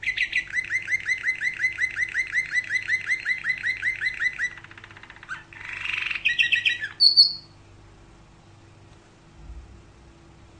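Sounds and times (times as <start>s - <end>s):
canary song with long even trill of rapidly repeated chirps: 0.0s - 7.8s.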